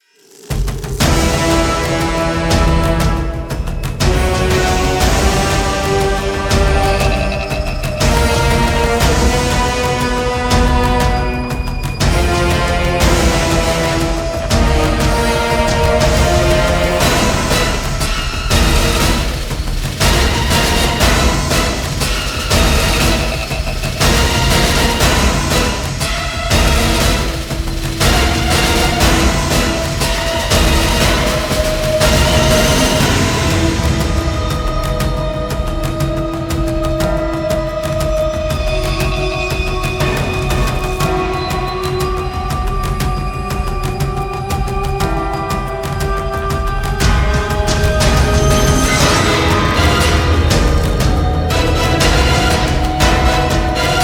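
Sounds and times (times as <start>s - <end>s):
video game boss music: 0.6s - 54.0s.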